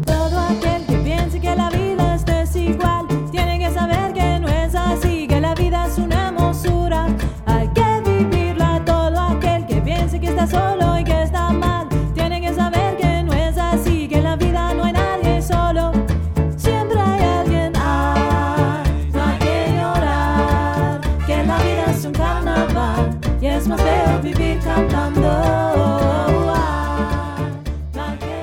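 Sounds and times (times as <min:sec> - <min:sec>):
Latin singer singing: 0:00.1 - 0:16.0, 0:16.7 - 0:28.4.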